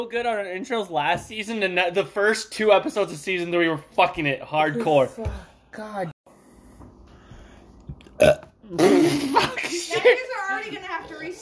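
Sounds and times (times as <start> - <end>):
speech: 0.0 - 6.1
short loud throaty burp: 8.2 - 9.5.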